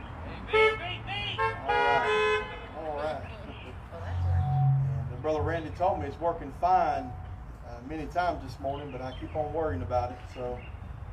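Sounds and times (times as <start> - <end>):
car horns honking: 0.4 - 3.2, 4.0 - 7.5
low rumble: 3.2 - 7.9
speech: 5.6 - 7.2, 7.8 - 10.7.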